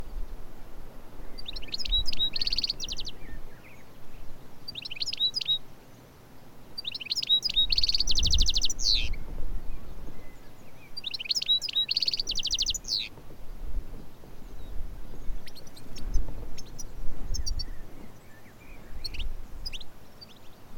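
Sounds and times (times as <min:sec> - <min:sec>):
steady low rumble of wind or background noise: 0:00.0 - 0:20.7
European goldfinch Carduelis carduelis twittering: 0:01.4 - 0:03.9, 0:04.7 - 0:05.6, 0:06.8 - 0:09.2, 0:10.4 - 0:13.1, 0:15.2 - 0:20.6.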